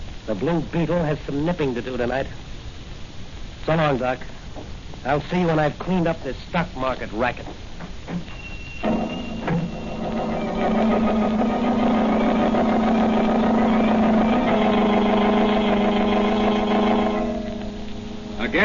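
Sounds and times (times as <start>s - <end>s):
speech: 0.3s - 2.6s, 3.6s - 8.4s
motor car engine running: 10.0s - 18.6s.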